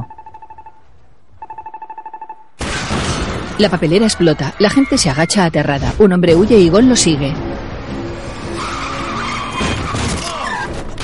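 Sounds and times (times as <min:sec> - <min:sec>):
speech: 0:03.6 - 0:07.5
car tires squealing in a long skid: 0:08.4 - 0:10.7.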